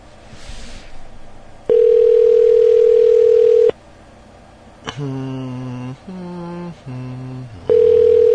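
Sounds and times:
telephone ringing on an outgoing call: 1.7 - 3.8, 7.7 - 8.3.

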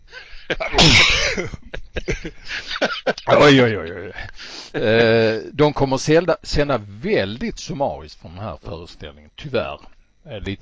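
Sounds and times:
laughter: 0.1 - 4.0
person sneezing: 0.5 - 1.4
speech: 0.5 - 10.6
short noisy exhales: 4.2 - 4.8
person sniffing: 4.3 - 4.8.

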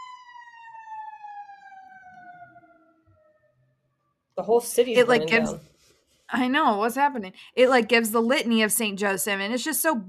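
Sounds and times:
emergency vehicle sirens passing in city: 0.0 - 3.8
speech: 4.4 - 5.7, 6.3 - 10.0.

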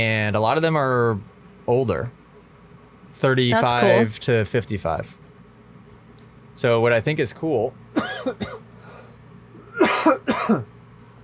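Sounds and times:
speech: 0.0 - 2.2, 3.1 - 5.2, 6.6 - 8.6, 9.8 - 10.8
man coughing in harsh bursts: 8.0 - 8.7, 9.7 - 10.7.

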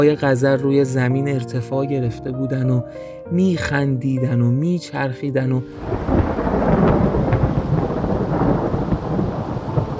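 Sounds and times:
speech: 0.0 - 6.3
steady rain hissing: 5.7 - 9.9
thunder rumbling: 5.8 - 9.9.

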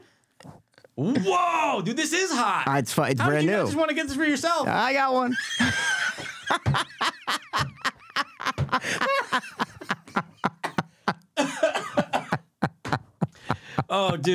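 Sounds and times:
speech: 1.0 - 7.2, 14.0 - 14.3
hard rapid coughing: 8.4 - 14.3
wheezy laughing breaths: 8.6 - 11.2, 13.2 - 14.0.

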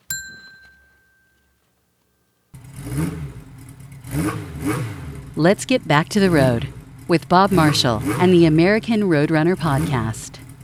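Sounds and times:
single bright bell ding: 0.0 - 1.6
loud engine roaring and revving: 2.6 - 10.6
speech: 5.4 - 10.4.

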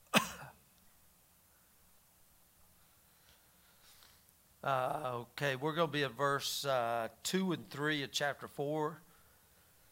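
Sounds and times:
person coughing and clearing throat: 0.1 - 0.6
speech: 4.6 - 9.0.

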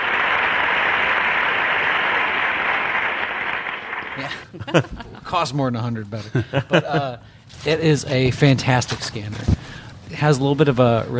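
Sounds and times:
crowd roaring and cheering: 0.0 - 4.2
laughter: 4.2 - 5.4, 6.2 - 7.2
speech: 4.2 - 11.1.

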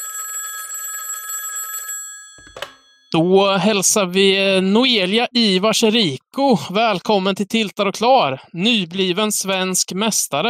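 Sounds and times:
electronic ringing tone of an outgoing phone call: 0.0 - 3.2
speech: 3.1 - 10.4.

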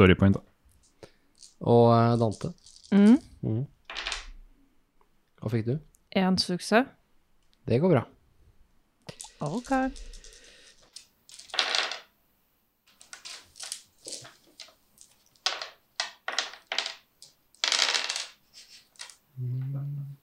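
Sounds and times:
speech: 0.0 - 0.5, 1.6 - 3.8, 5.4 - 7.0, 7.7 - 8.2, 9.1 - 10.2
dice clattering and tumbling across a hard table: 1.4 - 3.2, 3.9 - 4.4, 9.1 - 12.1, 12.9 - 19.2
low hum from a voice: 3.0 - 3.7, 19.4 - 20.2.

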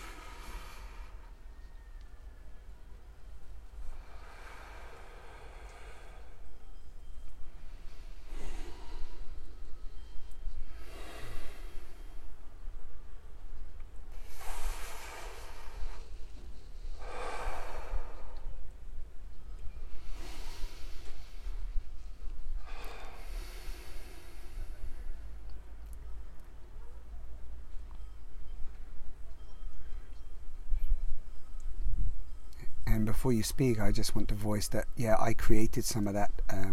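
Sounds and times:
slow deep breathing through mouth and nose: 0.0 - 2.3, 3.4 - 25.8
low steady hum: 0.0 - 36.7
speech: 33.0 - 36.7.

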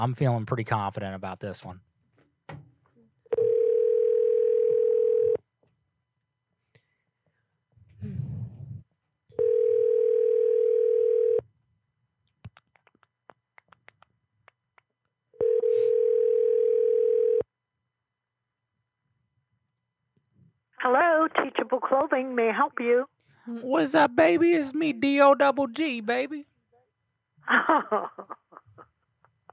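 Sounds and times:
speech: 0.0 - 1.9, 20.8 - 26.5, 27.5 - 28.4
outgoing telephone call ringback tones: 3.3 - 5.4, 9.4 - 11.4, 15.4 - 17.4.

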